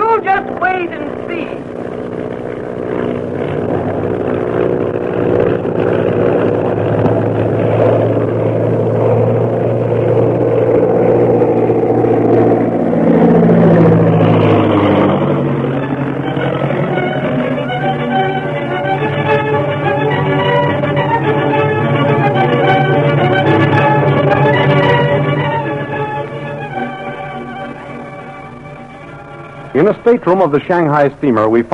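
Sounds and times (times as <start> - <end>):
airplane engine droning as the plane climbs: 0.0 - 31.7
speech: 30.1 - 31.7.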